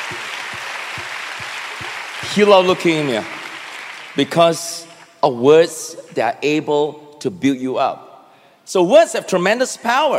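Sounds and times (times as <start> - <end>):
deep rhythmic thumps: 0.0 - 3.6
crowd applause: 0.0 - 4.2
speech: 2.3 - 3.4, 4.2 - 8.1, 8.7 - 10.1.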